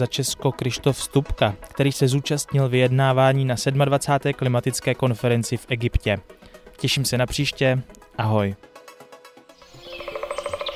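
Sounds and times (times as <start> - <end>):
speech: 0.0 - 8.7
bird chirping bright repeated notes: 9.6 - 10.7.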